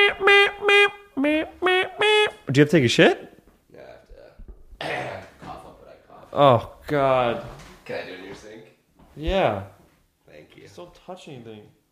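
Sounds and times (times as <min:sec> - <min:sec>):
voice imitating a trumpet: 0:00.0 - 0:02.5
speech: 0:02.5 - 0:03.3, 0:06.4 - 0:08.5, 0:09.2 - 0:09.7, 0:10.7 - 0:11.8.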